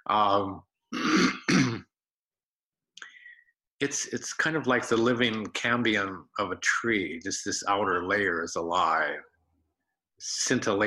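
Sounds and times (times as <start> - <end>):
speech: 0.1 - 1.4, 3.8 - 9.3, 10.2 - 10.8
person clearing throat from lingering cough: 0.9 - 2.0.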